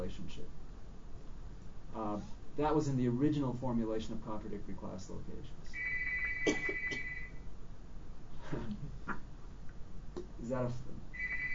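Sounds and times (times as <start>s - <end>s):
speech: 2.0s - 5.8s, 6.4s - 7.1s, 10.5s - 11.0s
phone ringing faintly through a call participant's open microphone: 5.8s - 7.4s, 11.2s - 11.5s.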